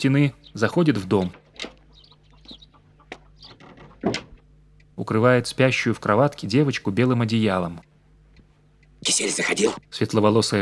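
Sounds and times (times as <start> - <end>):
speech: 0.0 - 1.4, 5.0 - 7.9, 9.0 - 10.6
chickens clucking in a yard: 0.7 - 4.2
chicken or rooster squawk in a yard: 1.7 - 3.6.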